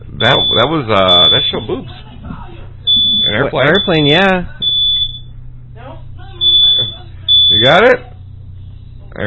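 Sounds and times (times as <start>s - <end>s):
smoke detector alarm going off: 0.0s - 1.9s, 2.8s - 5.4s, 6.3s - 8.8s
low hum: 0.0s - 9.2s
speech: 0.2s - 2.4s, 3.3s - 4.6s, 7.6s - 8.1s.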